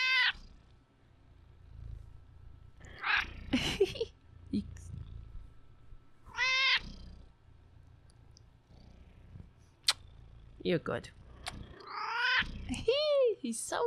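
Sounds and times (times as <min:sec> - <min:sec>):
cat purring: 0:00.0 - 0:12.9
speech: 0:10.7 - 0:11.2, 0:12.8 - 0:13.8.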